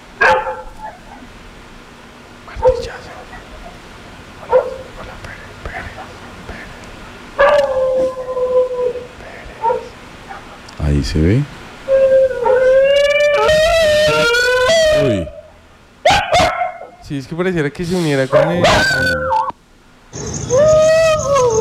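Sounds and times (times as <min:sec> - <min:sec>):
low hiss: 0:00.0 - 0:20.5
dog barking: 0:00.2 - 0:01.3, 0:02.6 - 0:03.8, 0:04.4 - 0:05.1, 0:07.4 - 0:07.8, 0:09.6 - 0:10.5, 0:16.0 - 0:17.0, 0:18.3 - 0:19.2
speech: 0:11.0 - 0:11.6, 0:17.1 - 0:19.4.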